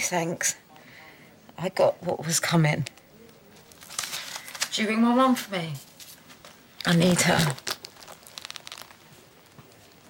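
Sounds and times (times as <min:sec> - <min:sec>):
speech: 0:00.1 - 0:00.6, 0:01.6 - 0:03.0, 0:04.8 - 0:05.9, 0:06.8 - 0:07.7
paper crinkling and rustling as it is handed over: 0:03.5 - 0:04.9, 0:05.8 - 0:10.0.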